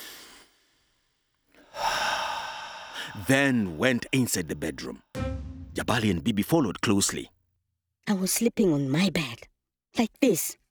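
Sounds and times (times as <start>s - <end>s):
frightened girl taking a deep breath: 1.6s - 3.2s
speech: 3.2s - 5.1s, 5.8s - 7.4s, 8.0s - 10.6s.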